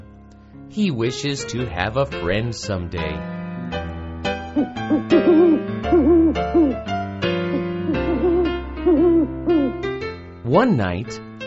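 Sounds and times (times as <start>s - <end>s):
speech: 0.7s - 3.4s, 4.6s - 6.9s, 10.5s - 11.2s
sustained musical tones: 4.4s - 9.8s
owl hooting in a forest at night: 4.6s - 6.8s, 7.5s - 9.8s.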